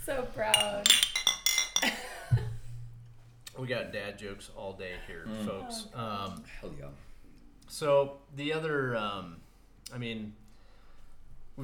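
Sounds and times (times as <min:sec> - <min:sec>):
speech: 0:00.1 - 0:00.8, 0:03.7 - 0:07.1, 0:07.7 - 0:10.4
glasses clinking together in a toast: 0:00.5 - 0:02.4.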